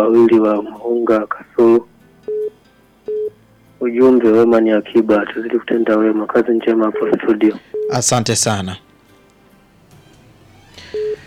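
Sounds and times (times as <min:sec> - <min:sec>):
speech: 0:00.0 - 0:01.9, 0:03.8 - 0:08.9
telephone line beep signaling an incoming call: 0:03.1 - 0:03.3, 0:05.9 - 0:08.0, 0:10.9 - 0:11.2.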